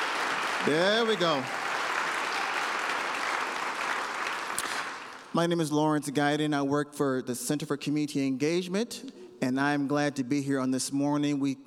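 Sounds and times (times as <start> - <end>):
audience clapping hands: 0.0 - 5.3
speech: 0.6 - 1.6, 5.4 - 11.6.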